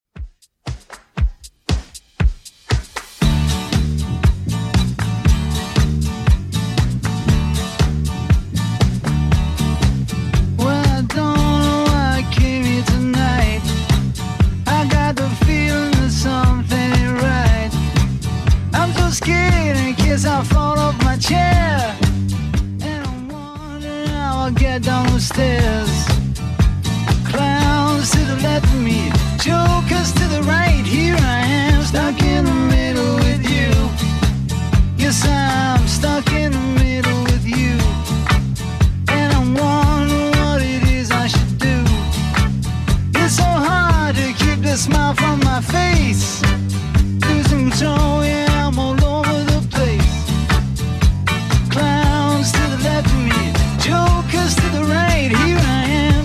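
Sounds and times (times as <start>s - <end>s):
70s-style drum machine beat: 0.1s - 56.2s.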